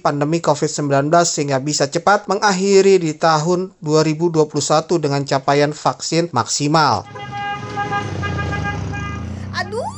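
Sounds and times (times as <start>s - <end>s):
speech: 0.0s - 8.0s
many cars rumbling past on a busy road: 7.0s - 9.9s
sustained horn-like tones over the traffic: 7.0s - 9.9s.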